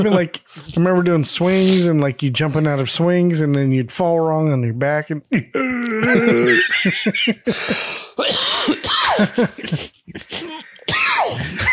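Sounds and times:
speech: 0.0s - 11.7s
47-year-old man laughing hard: 5.6s - 8.0s, 9.1s - 9.9s, 10.5s - 11.7s
47-year-old man coughing after hard laughing: 6.0s - 11.7s.

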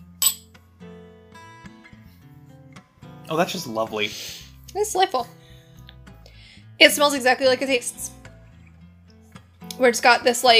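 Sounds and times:
two glasses clinking in a toast during a tasting: 0.1s - 0.5s
speech: 3.3s - 5.4s, 6.8s - 8.1s, 9.8s - 10.5s.

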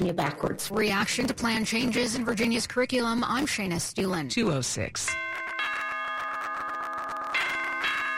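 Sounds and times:
speech: 0.0s - 5.4s
doorbell ding-dong chime: 5.1s - 8.1s.

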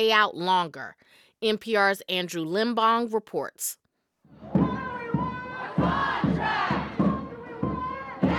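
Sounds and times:
speech: 0.0s - 4.6s
crowd chanting in unison at an outdoor rally on a sunny day: 4.3s - 8.3s.

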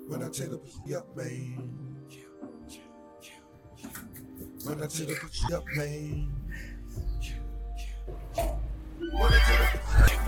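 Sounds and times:
low rumble of music: 0.0s - 10.2s
speech: 0.1s - 4.0s, 4.6s - 6.7s, 9.1s - 10.1s
horse neighing: 9.0s - 10.2s.

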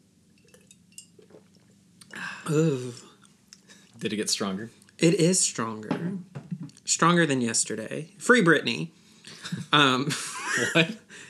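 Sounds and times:
low hum: 0.0s - 11.2s
glasses clinking together in a toast: 0.4s - 1.4s
speech: 2.5s - 3.1s, 4.0s - 11.1s
laughter: 9.3s - 11.1s.

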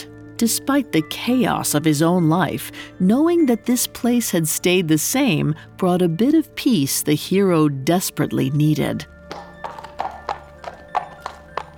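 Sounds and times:
speech: 0.4s - 9.2s
trotting centaur hooves clip-clopping on a cave floor: 9.2s - 11.7s.

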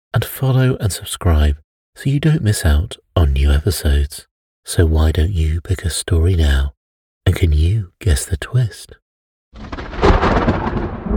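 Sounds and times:
speech: 0.4s - 9.8s
deep rolling thunder in a thunderstorm: 9.6s - 11.1s
steady rain in a thunderstorm: 9.6s - 11.1s.

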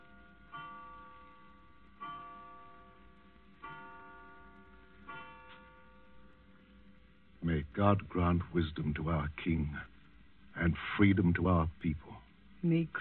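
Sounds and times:
clock striking twelve with resonant bell-like chimes: 0.0s - 6.5s
speech: 7.5s - 9.9s, 10.6s - 12.9s.

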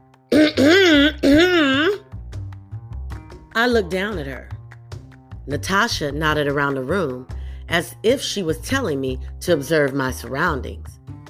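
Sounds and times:
loud throat clearing: 0.3s - 2.0s
speech: 3.6s - 4.5s, 5.5s - 11.0s.

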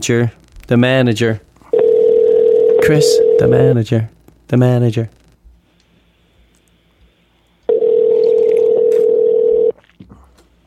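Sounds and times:
speech: 0.0s - 1.5s, 2.8s - 5.2s
telephone dial tone: 1.8s - 3.5s, 7.7s - 9.7s.

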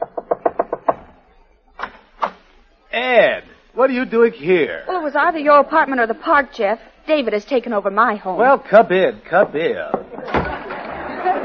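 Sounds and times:
frantic knocking on a door: 0.0s - 1.2s
speech: 3.0s - 10.0s
laughter: 10.0s - 11.4s.

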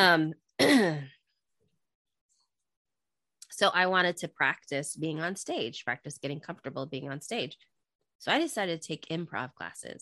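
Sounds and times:
speech: 0.0s - 1.2s, 3.6s - 10.0s
person coughing: 0.6s - 1.2s.

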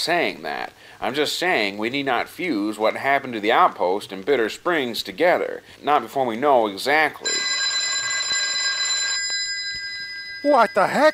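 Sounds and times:
speech: 0.0s - 7.4s, 10.4s - 11.1s
telephone bell ringing: 7.2s - 11.1s.

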